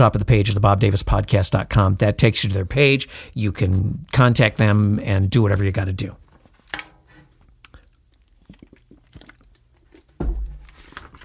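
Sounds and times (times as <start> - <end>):
speech: 0.0 - 6.8
wet mouth clicks while sipping water: 7.5 - 10.2
quiet slurping and swallowing of water: 7.5 - 11.0
low thump: 10.2 - 10.8.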